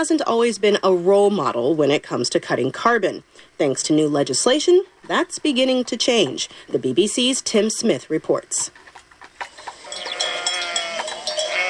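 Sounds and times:
speech: 0.0s - 8.8s
clanking sheep bells: 9.4s - 11.6s
flock of sheep bleating on a farm in Spanish hill country: 9.6s - 11.6s.

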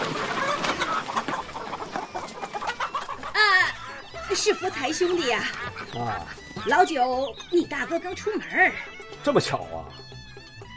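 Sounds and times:
chicken squawk: 0.0s - 7.1s
chickens clucking in a chicken coop: 0.0s - 10.7s
speech: 4.4s - 10.0s.

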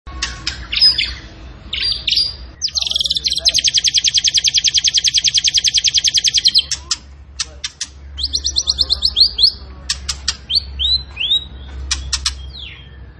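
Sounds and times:
caged zebra finch song: 0.1s - 13.1s
zebra finch harsh nasal calls: 2.6s - 7.1s, 8.2s - 9.7s.

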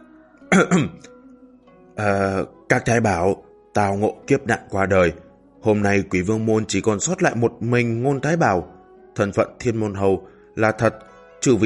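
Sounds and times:
dry cough: 0.5s - 1.1s
speech: 0.6s - 1.1s, 2.0s - 11.6s.

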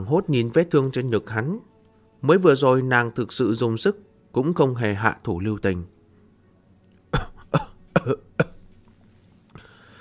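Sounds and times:
speech: 0.0s - 5.9s, 7.1s - 8.3s
wounded man having a dry coughing fit: 7.1s - 8.6s.

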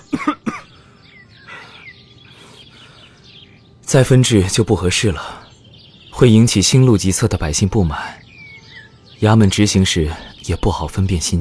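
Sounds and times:
person coughing: 0.0s - 0.8s
speech: 3.9s - 5.4s, 6.2s - 8.2s, 9.2s - 11.3s.

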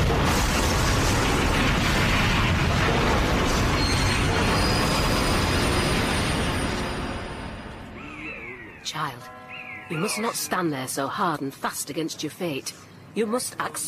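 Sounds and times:
rumbling metal: 0.0s - 7.9s
train crash of iron striking iron: 0.0s - 8.0s
screeching train wheels: 3.7s - 7.6s
speech: 8.9s - 13.8s.

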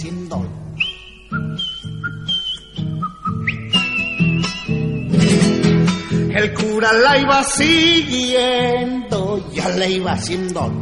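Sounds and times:
speech: 0.0s - 0.6s, 6.4s - 10.8s
melodic whistling: 0.8s - 5.5s.

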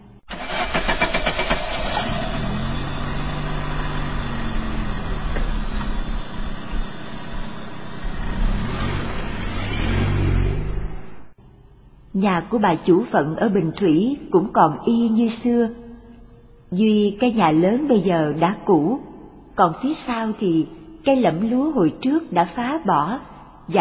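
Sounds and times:
car engine starting and running: 0.0s - 11.8s
speech: 12.2s - 15.8s, 16.7s - 23.7s.

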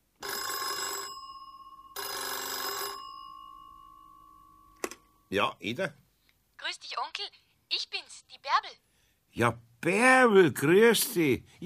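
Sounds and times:
telephone bell ringing: 0.2s - 5.2s
speech: 5.3s - 6.0s, 9.4s - 11.6s.

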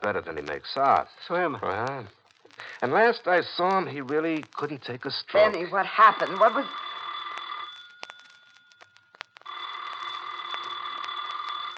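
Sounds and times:
speech: 0.0s - 6.8s
telephone ringing in a bright bell trill: 5.4s - 11.7s.

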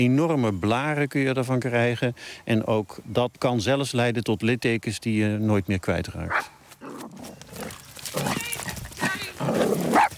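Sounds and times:
speech: 0.0s - 6.6s
dog running up to another dog barking and yelping: 8.2s - 10.1s.

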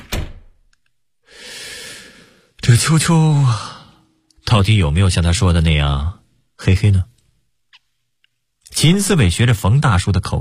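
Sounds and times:
door shutting with a thud: 0.0s - 0.6s
steady broadband hiss: 0.9s - 10.3s
speech: 2.7s - 3.8s, 4.5s - 7.1s, 8.8s - 10.3s.

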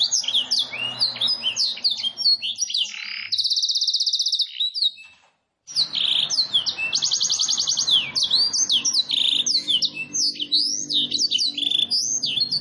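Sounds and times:
domestic canary singing: 0.0s - 12.5s.

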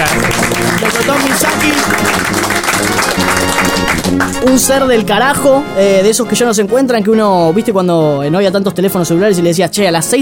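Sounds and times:
crowd applauding: 0.0s - 4.9s
speech: 4.4s - 10.2s.

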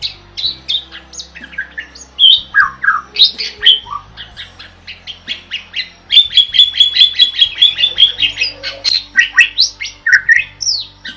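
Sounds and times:
bird singing loudly in a masteran training recording: 0.0s - 11.1s.

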